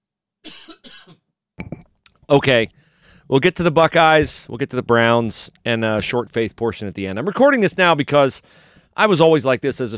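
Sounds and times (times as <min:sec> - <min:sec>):
person coughing: 0:00.4 - 0:01.2
speech: 0:02.3 - 0:09.9.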